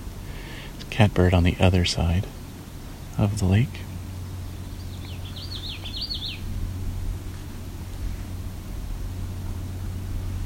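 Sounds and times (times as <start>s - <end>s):
steady low rumble: 0.9s - 10.4s
speech: 1.0s - 2.4s, 3.2s - 3.9s
Common Yellowthroat song singing alongside a lake: 1.8s - 8.6s.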